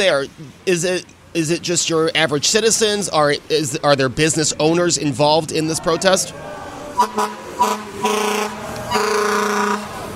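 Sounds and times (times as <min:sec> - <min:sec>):
speech: 0:00.0 - 0:09.6
fire truck engine rumbling: 0:00.0 - 0:10.1
street noise: 0:00.0 - 0:10.1
Buffalo fire truck air horn blasts: 0:07.0 - 0:10.1.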